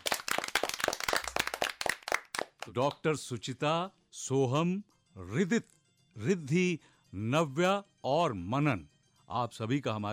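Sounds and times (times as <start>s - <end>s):
small group applauding at the close of a radio program: 0.0s - 3.0s
speech: 2.6s - 10.1s.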